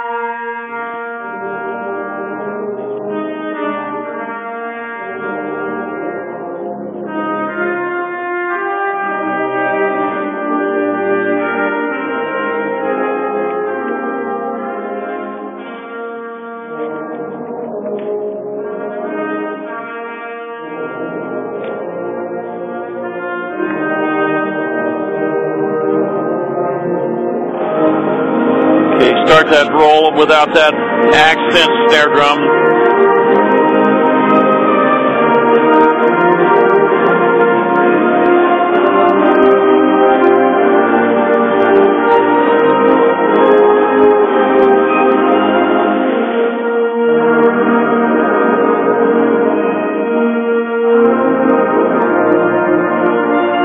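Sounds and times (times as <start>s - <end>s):
woodwinds playing: 0.0s - 53.6s
bells playing: 27.6s - 35.8s
speech: 30.2s - 32.6s.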